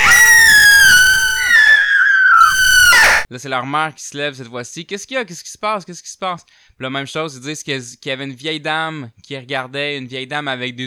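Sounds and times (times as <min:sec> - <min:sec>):
young girls screaming: 0:00.0 - 0:03.3
speech: 0:03.3 - 0:10.8.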